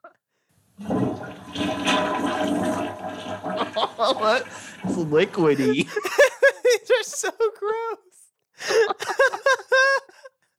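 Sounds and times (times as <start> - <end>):
toilet flushing: 0.6 - 6.0
laughter: 3.5 - 4.6, 5.3 - 8.0, 8.6 - 10.3
speech: 4.0 - 6.2, 7.0 - 8.0.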